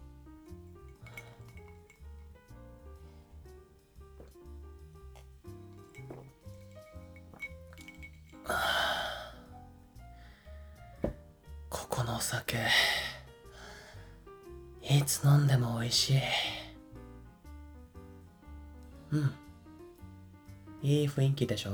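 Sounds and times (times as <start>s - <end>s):
soft music with a steady bass line: 0.0s - 21.7s
glasses clinking in a toast at a bar: 0.4s - 10.2s, 11.0s - 11.3s
speech: 8.5s - 8.7s, 12.2s - 13.1s, 14.9s - 16.6s, 19.1s - 19.4s, 20.8s - 21.7s.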